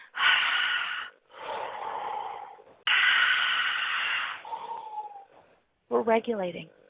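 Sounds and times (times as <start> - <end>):
slow deep breathing: 0.0 - 5.5
speech: 6.0 - 6.8.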